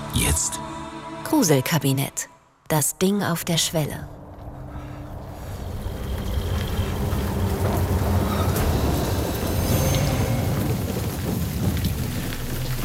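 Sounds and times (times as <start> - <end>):
speech: 0.2 - 4.2
heavy rain pouring: 4.7 - 12.8
thunder: 5.2 - 12.8.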